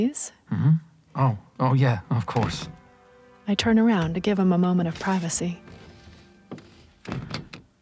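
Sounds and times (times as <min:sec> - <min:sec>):
speech: 0:00.0 - 0:02.8, 0:03.5 - 0:05.8
massage table creaks and rustling bumps as a man shifts: 0:01.2 - 0:07.8.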